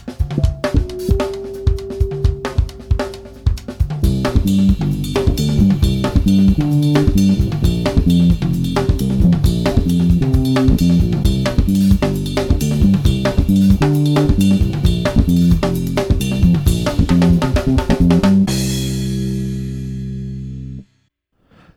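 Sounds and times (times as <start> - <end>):
V-Bass fretless bass: 0.2 - 20.8.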